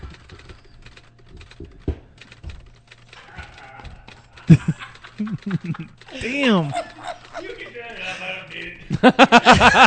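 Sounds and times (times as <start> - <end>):
horse hooves clip-clopping: 0.0 - 6.0
laughter: 3.2 - 9.8
speech: 5.2 - 6.9, 8.0 - 9.8.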